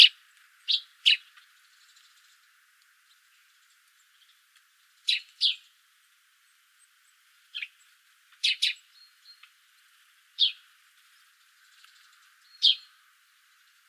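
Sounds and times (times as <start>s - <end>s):
Eurasian tree sparrow Passer montanus uttering clipped chirps: 0.0s - 4.4s, 5.0s - 5.7s, 7.1s - 9.5s, 10.4s - 13.8s.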